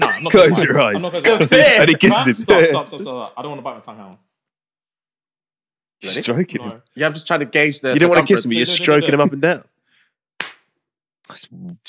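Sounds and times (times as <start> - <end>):
laughter: 0.0 - 3.4, 8.0 - 9.6
speech: 0.2 - 4.3, 6.0 - 9.7, 11.3 - 11.8
hand slapping someone's neck: 10.4 - 10.8.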